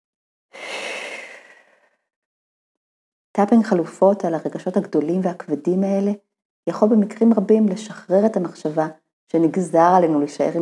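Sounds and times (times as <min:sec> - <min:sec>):
long deep breath drawn and released: 0:00.5 - 0:02.0
speech: 0:03.4 - 0:10.5.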